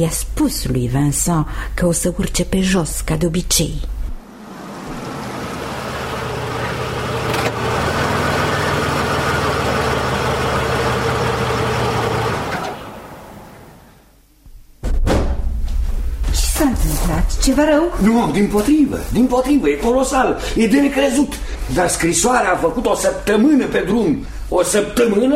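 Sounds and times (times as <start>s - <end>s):
speech: 0.0s - 4.0s, 17.5s - 25.3s
car engine idling: 4.2s - 13.9s
brief thump: 14.8s - 16.2s.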